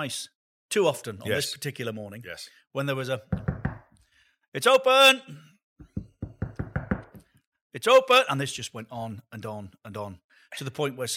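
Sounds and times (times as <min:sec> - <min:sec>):
speech: 0:00.0 - 0:03.5, 0:04.5 - 0:05.5, 0:07.7 - 0:11.1
knocking on a hard wall surface: 0:03.3 - 0:04.0, 0:05.8 - 0:07.3.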